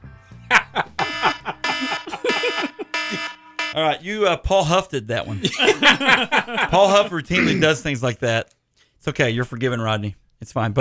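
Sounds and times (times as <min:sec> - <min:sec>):
laughter: 0:00.5 - 0:03.4, 0:05.3 - 0:07.8
loud harsh electronic alarm buzzer: 0:00.8 - 0:03.8
speech: 0:03.8 - 0:10.7
vocal-like sounds: 0:07.3 - 0:07.9.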